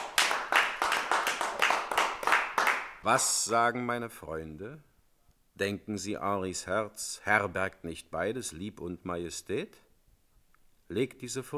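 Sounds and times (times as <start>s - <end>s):
applause in an audio drama: 0.0s - 3.3s
speech: 3.0s - 4.9s, 5.6s - 9.8s, 10.9s - 11.5s.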